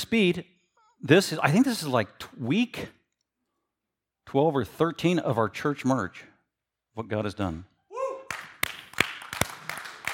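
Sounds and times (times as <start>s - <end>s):
speech: 0.0s - 3.0s, 4.3s - 6.3s, 7.0s - 7.7s
audience clapping in a church: 8.3s - 10.1s.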